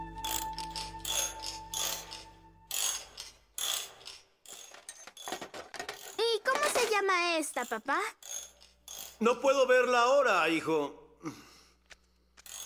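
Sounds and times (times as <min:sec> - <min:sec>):
ratchet wrench clicking while repairing a washing machine: 0:00.2 - 0:06.2, 0:08.2 - 0:09.2, 0:12.3 - 0:12.6
metallic clatter: 0:00.3 - 0:09.2
speech: 0:07.5 - 0:08.2, 0:09.2 - 0:11.5.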